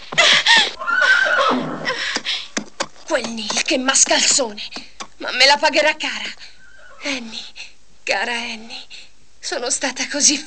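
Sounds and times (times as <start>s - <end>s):
panicked horse neighing with a shrill whinny: 0.7s - 2.0s, 6.6s - 7.1s
speech: 3.3s - 6.4s, 7.0s - 10.4s.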